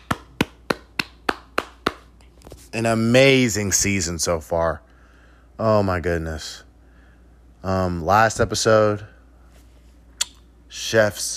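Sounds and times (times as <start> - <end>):
hands clapping: 0.0 - 2.3
speech: 2.7 - 4.9, 5.6 - 6.7, 7.6 - 9.1, 10.7 - 11.3.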